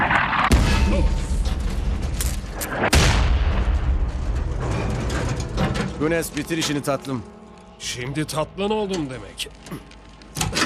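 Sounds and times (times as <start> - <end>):
thrown bomb exploding: 0.0 - 5.5
continuous rumbling din: 0.0 - 6.5
speech: 6.0 - 10.5.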